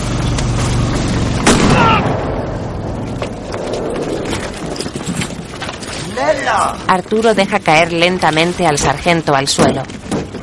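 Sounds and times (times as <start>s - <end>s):
noise: 0.0s - 10.4s
pistol shot: 1.4s - 2.6s
speech: 6.5s - 10.0s.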